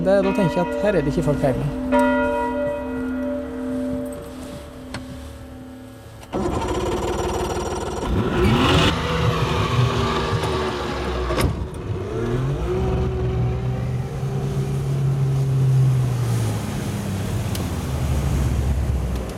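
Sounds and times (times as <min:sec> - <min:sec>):
speech: 0:00.0 - 0:02.1
bell ringing: 0:00.0 - 0:05.9
boat engine rumbling over water: 0:00.0 - 0:19.3.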